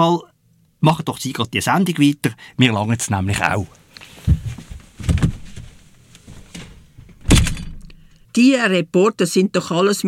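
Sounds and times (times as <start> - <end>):
speech: 0.0 - 4.4, 8.4 - 10.0
door slammed shut with heavy booming thuds: 6.6 - 8.0.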